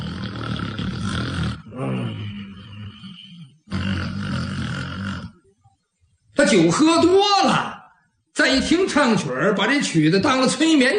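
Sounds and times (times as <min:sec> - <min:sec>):
performer imitating loud heavy snoring: 0:00.0 - 0:05.4
speech: 0:06.5 - 0:07.7, 0:08.4 - 0:10.9.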